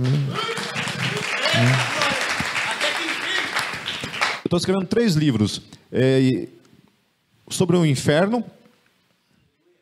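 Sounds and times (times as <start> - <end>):
crowd clapping and cheering: 0.0 - 4.5
scattered voices and whoops: 0.3 - 2.2
speech: 4.5 - 6.6, 7.5 - 8.6.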